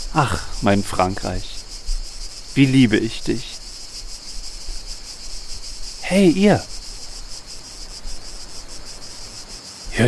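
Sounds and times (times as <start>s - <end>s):
cicadas chirping in southern France: 0.0s - 10.0s
speech: 0.2s - 1.6s, 2.6s - 3.5s, 6.1s - 6.7s.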